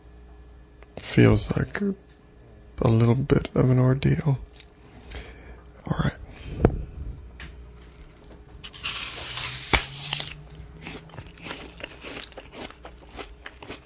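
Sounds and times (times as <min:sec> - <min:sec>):
speech: 0:01.2 - 0:02.1, 0:02.8 - 0:04.5
biting a crunchy apple: 0:08.6 - 0:13.8.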